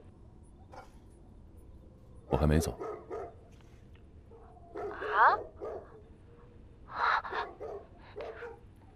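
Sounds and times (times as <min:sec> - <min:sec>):
dogs barking in a courtyard: 0:00.7 - 0:01.1, 0:02.2 - 0:03.5, 0:04.2 - 0:06.1, 0:06.9 - 0:08.8
speech: 0:02.3 - 0:03.0.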